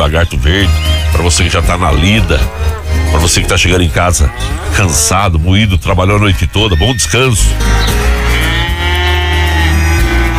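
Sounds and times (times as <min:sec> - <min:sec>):
speech: 0:00.1 - 0:08.2
cows mooing: 0:00.7 - 0:05.1, 0:06.6 - 0:10.3.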